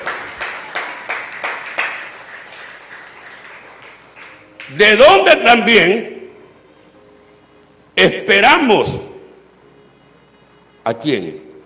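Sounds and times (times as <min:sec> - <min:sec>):
crowd clapping in rhythm during a sermon: 0:00.0 - 0:05.0
speech: 0:04.7 - 0:06.2, 0:08.0 - 0:09.1, 0:10.8 - 0:11.4.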